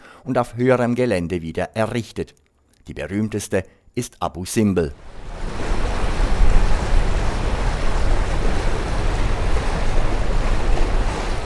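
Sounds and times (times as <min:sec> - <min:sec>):
speech: 0:00.2 - 0:05.5
cruise ship ploughing through lake water: 0:05.0 - 0:11.4
wind buffeting: 0:05.0 - 0:11.4.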